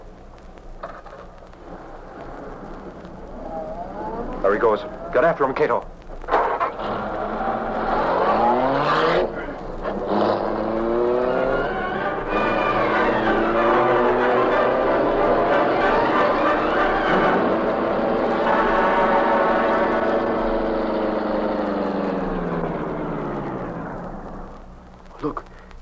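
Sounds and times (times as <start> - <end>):
speech: 4.4 - 5.9
car engine starting and revving hard as the vehicle pulls away: 6.2 - 24.6.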